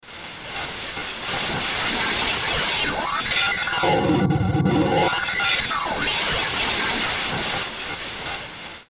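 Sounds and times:
static oscillation sweeper fuzz transition: 1.4 - 7.3.

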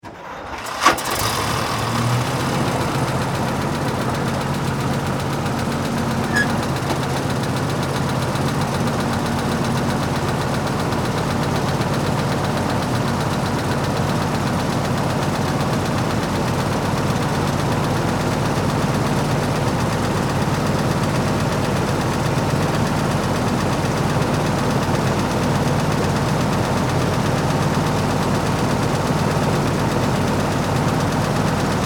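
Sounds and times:
World War II military half-track tank starting up, idling and turning off: 0.0 - 31.8.

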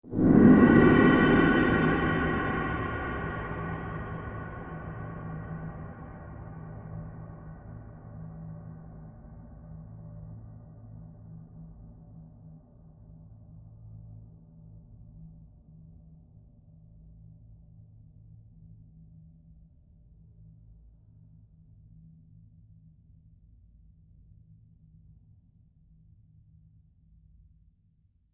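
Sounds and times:
musical gong long low rumble: 0.0 - 7.4.

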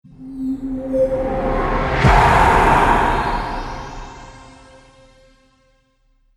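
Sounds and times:
monster trailer hit: 1.4 - 5.3.

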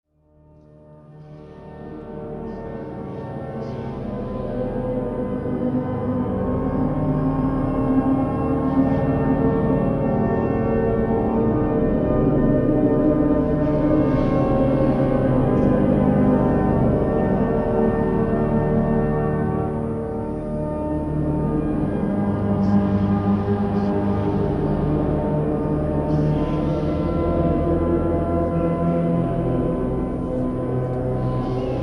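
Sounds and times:
hymn from circa 1600: 1.4 - 31.8.

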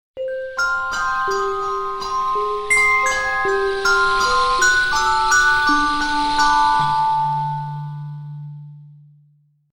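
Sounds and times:
tribal bells in a sci-fi audio logo: 0.2 - 8.7
metallic sweep in a sci-fi audio logo: 0.5 - 8.2
strange tone in a sci-fi audio logo: 1.0 - 8.4.

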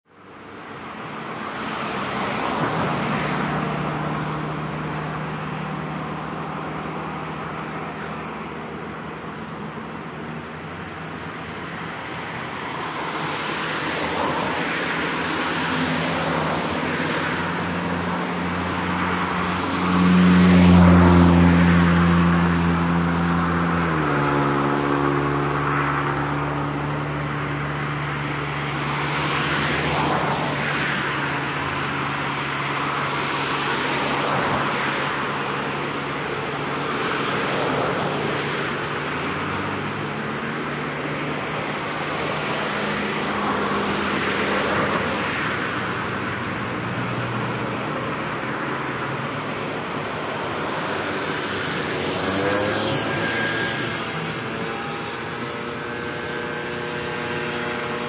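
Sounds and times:
Southern European cars travelling at medium speed in both directions: 0.1 - 58.0
Southern European mopeds travelling at medium speed: 11.6 - 58.0.

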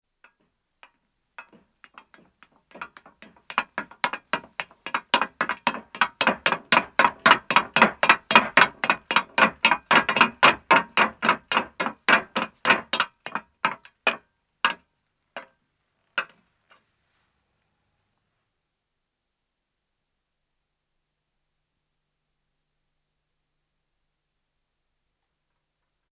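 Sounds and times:
man's footsteps descending on metal, approaching and stopping: 0.2 - 15.6.

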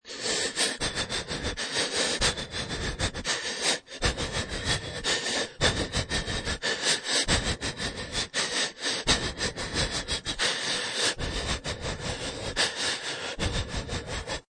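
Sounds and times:
human scared panicky breathing, short of breath: 0.0 - 14.4.

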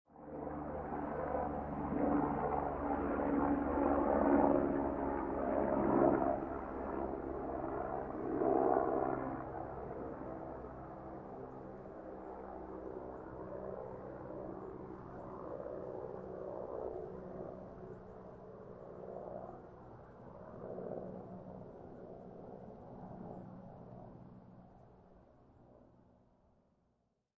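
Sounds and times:
transport helicopter flying by overhead: 0.1 - 26.0.

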